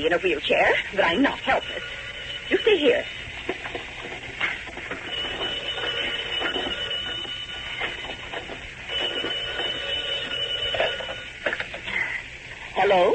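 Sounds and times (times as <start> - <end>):
speech: 0.0 - 3.6, 12.9 - 13.1
old-fashioned telephone bell ringing: 1.1 - 3.6, 4.9 - 11.4.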